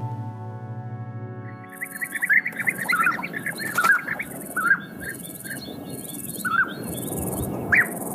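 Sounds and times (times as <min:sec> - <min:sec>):
European bee-eaters calling with rolling chirps: 0:01.5 - 0:08.1
steady pulsing insect buzz: 0:01.7 - 0:08.1.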